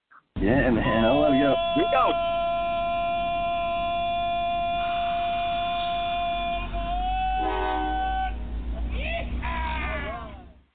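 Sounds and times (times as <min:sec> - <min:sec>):
speech: 0:00.4 - 0:02.4
low rumbling train engine: 0:00.4 - 0:10.7
loud train horn blaring in long steady chords: 0:00.6 - 0:09.4
wavering bending train whistle blasts: 0:00.9 - 0:08.5.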